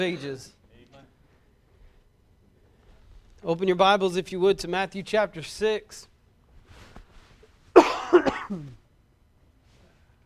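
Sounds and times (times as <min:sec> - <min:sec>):
speech: 0:00.0 - 0:00.6, 0:03.4 - 0:06.1, 0:08.2 - 0:08.8
harsh rough throaty cough of a preacher during a sermon: 0:07.7 - 0:08.8.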